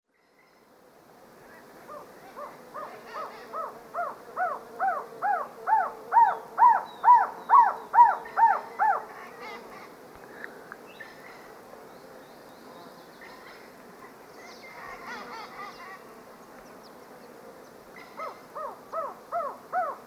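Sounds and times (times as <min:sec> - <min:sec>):
faint other bird sounds: 0:00.1 - 0:20.0.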